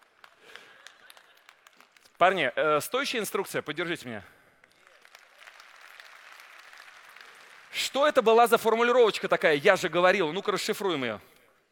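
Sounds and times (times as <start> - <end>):
group of people in an audience clapping: 0.0 - 2.4, 4.6 - 9.0
speech: 2.2 - 4.4, 7.9 - 11.3.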